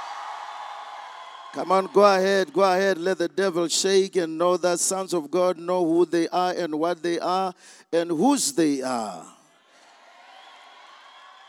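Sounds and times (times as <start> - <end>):
church audience shouting and cheering to Jesus: 0.0 - 3.0, 9.6 - 11.4
speech: 1.5 - 9.4.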